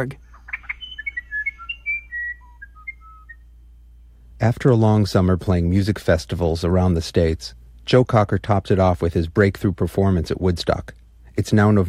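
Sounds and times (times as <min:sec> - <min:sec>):
speech: 0:00.0 - 0:00.2, 0:04.4 - 0:11.8
musician wren singing whistled tones: 0:00.0 - 0:03.6.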